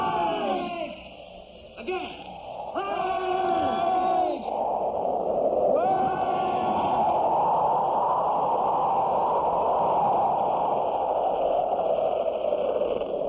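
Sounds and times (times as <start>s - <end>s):
strong storm wind roaring: 0.0s - 13.2s.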